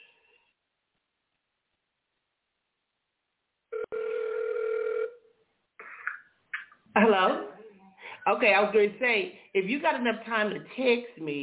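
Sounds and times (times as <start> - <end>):
phone ringback tone on an outgoing call: 3.7 - 5.2
speech: 7.0 - 7.5, 8.2 - 11.4.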